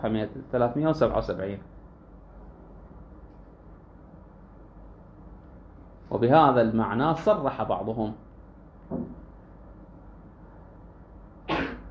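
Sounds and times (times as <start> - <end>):
speech: 0.0 - 1.8, 6.1 - 8.3, 8.9 - 9.2
low hum: 0.0 - 11.8
person sneezing: 11.5 - 11.8.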